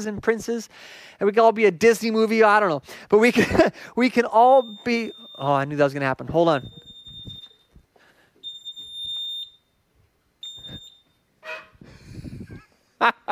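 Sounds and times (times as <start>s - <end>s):
speech: 0.0s - 6.8s, 13.0s - 13.3s
smoke alarm beeping: 3.4s - 11.7s.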